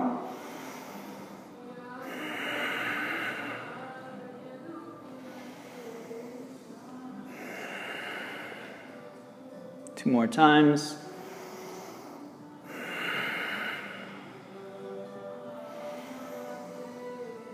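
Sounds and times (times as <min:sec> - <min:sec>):
slow airy alternate nostril breathing: 0:00.2 - 0:04.0, 0:05.1 - 0:09.1, 0:11.1 - 0:14.7, 0:15.6 - 0:17.5
speech: 0:10.0 - 0:11.0.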